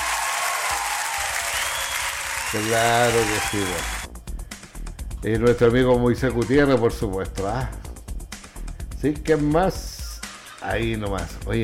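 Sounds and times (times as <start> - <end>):
applause for a group: 0.0 - 4.0
speech: 2.5 - 4.2, 5.2 - 7.8, 9.0 - 9.9, 10.6 - 11.6.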